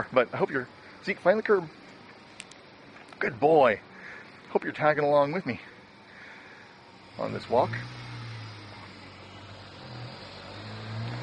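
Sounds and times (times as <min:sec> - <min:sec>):
speech: 0:00.0 - 0:01.8, 0:03.2 - 0:03.9, 0:04.5 - 0:05.7, 0:07.2 - 0:08.0
car passing on a nearby street: 0:05.6 - 0:11.2.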